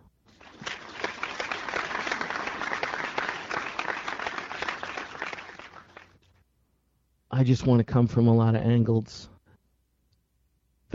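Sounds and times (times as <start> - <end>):
crowd applause: 0.3 - 6.2
speech: 7.4 - 9.3.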